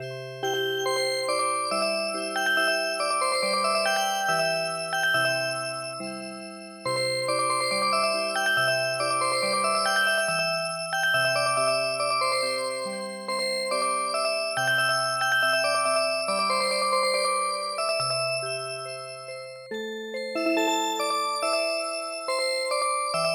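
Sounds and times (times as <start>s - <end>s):
music box playing a traditional song: 0.3s - 23.3s.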